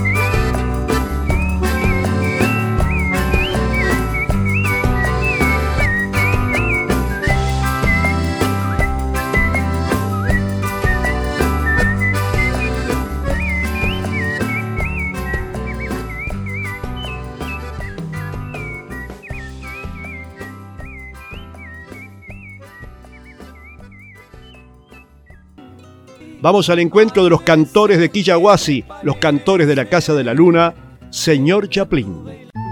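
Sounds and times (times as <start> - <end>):
person whistling a lively melody: 0.0 - 25.5, 32.6 - 32.7
full steady musical backing: 0.0 - 32.7
speech: 26.4 - 32.4.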